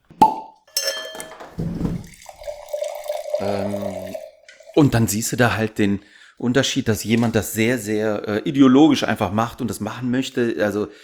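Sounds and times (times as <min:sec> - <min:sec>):
sharp pop of wine bottle being opened: 0:00.2 - 0:01.2
glassy clinks: 0:00.7 - 0:01.6
wine trickling and gurgling: 0:01.6 - 0:05.3
speech: 0:03.4 - 0:04.1, 0:04.8 - 0:11.0.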